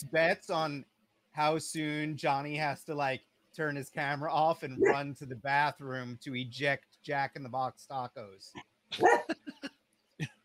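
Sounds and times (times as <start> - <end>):
speech: 0.0 - 10.4
dog barking and yapping: 4.8 - 5.0, 9.0 - 9.3.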